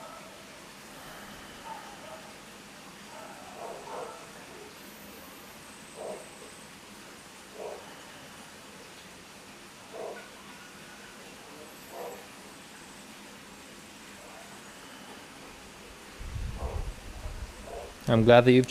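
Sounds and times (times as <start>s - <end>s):
dog barks: 0.0s - 0.4s, 1.5s - 2.4s, 3.1s - 4.8s, 5.9s - 6.4s, 7.5s - 8.0s, 9.9s - 10.4s, 11.6s - 12.4s, 16.5s - 18.0s
steady hiss of outdoor noise: 0.0s - 18.7s
speech: 18.1s - 18.7s.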